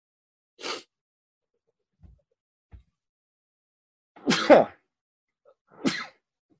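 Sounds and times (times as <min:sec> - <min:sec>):
person sneezing: 0:00.6 - 0:00.9, 0:04.2 - 0:04.8, 0:05.8 - 0:06.2.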